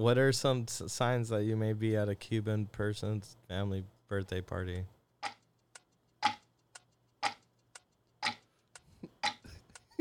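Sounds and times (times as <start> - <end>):
speech: 0.0 - 5.0
clock ticking with alternating tick and tock: 5.0 - 9.9.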